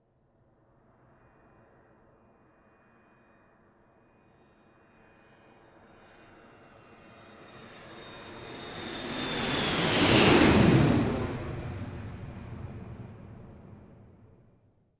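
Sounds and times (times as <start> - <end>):
airplane lifting off: 4.4 - 14.5.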